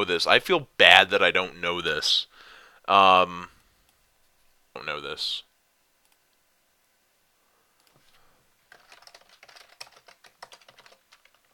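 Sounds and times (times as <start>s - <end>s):
speech: 0.0s - 3.5s, 4.8s - 5.5s
typing on a computer keyboard: 8.7s - 11.5s.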